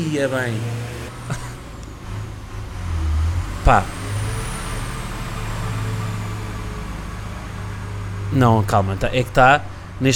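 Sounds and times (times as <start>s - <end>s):
speech: 0.0s - 1.4s, 3.7s - 4.1s, 8.3s - 10.1s
tractor heavy diesel engine rumbling while digging a hole: 0.0s - 10.1s
laughter: 1.3s - 1.7s.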